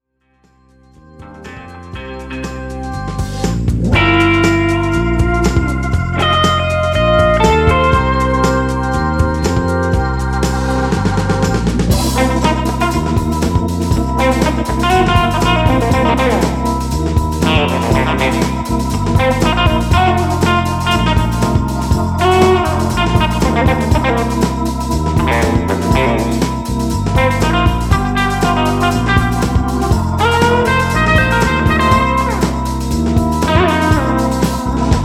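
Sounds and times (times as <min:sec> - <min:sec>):
distorted electric guitar with more gain: 0:01.2 - 0:35.0.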